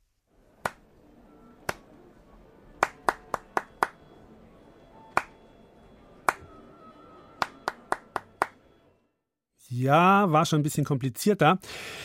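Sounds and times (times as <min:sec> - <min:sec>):
rhythmic pattern of sharp hand claps: 0:00.6 - 0:00.8, 0:01.6 - 0:01.9, 0:02.8 - 0:04.0, 0:05.1 - 0:05.4, 0:06.2 - 0:06.5, 0:07.4 - 0:08.6
speech: 0:09.7 - 0:12.0.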